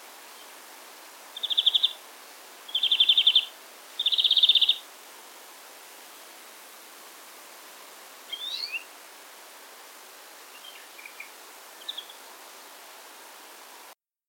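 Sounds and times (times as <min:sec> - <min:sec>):
European greenfinch Chloris chloris giving buzzy trills: 0:01.4 - 0:02.0, 0:02.7 - 0:04.8, 0:08.3 - 0:08.9
faint European greenfinch twittering fragment: 0:01.4 - 0:02.0, 0:02.7 - 0:04.8, 0:08.3 - 0:08.9, 0:10.5 - 0:12.2.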